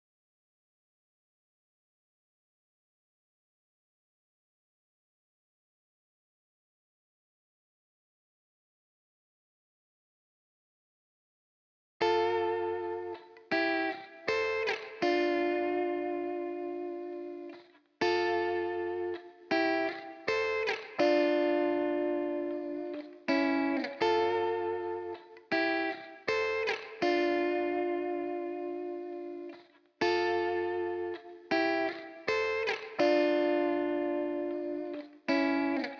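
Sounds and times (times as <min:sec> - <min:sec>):
guitar harmonies in D minor at 80 BPM: 0:12.0 - 0:35.9.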